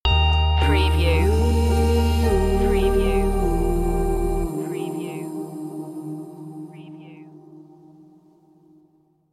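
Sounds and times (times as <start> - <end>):
indie music stinger: 0.1 - 4.5.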